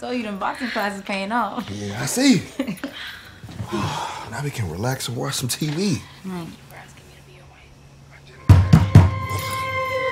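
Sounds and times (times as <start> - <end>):
speech: 0.0 - 6.7
loud, heavy knocks on a door: 8.5 - 9.2.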